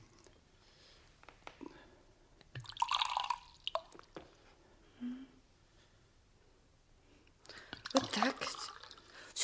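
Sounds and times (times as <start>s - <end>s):
soft drips: 2.4s - 4.4s, 7.5s - 9.3s
drink being poured: 2.6s - 4.2s, 7.8s - 9.2s.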